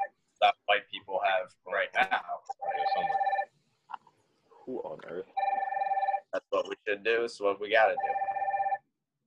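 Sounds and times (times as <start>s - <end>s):
speech: 0.4s - 2.2s, 6.9s - 8.3s
phone ringing in a warbling burst: 2.6s - 3.5s, 5.4s - 6.3s, 7.8s - 8.8s.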